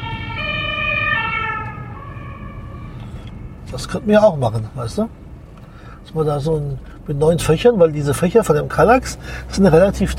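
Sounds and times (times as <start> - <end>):
ambulance siren wailing: 0.0 - 4.2
low rumble of road traffic: 0.0 - 10.1
speech: 3.7 - 5.2, 6.0 - 10.1.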